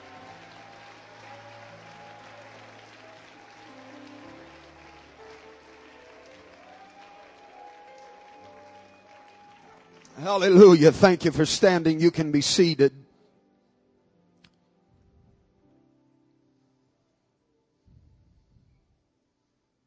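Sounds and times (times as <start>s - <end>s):
congregation clapping their hands: 0.0s - 12.4s
speech: 10.2s - 13.0s.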